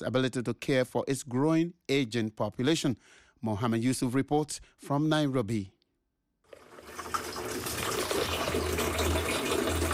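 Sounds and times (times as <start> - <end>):
speech: 0.0 - 5.8
water gushing from a tap at a tap water kiosk in Kenya: 6.5 - 9.9.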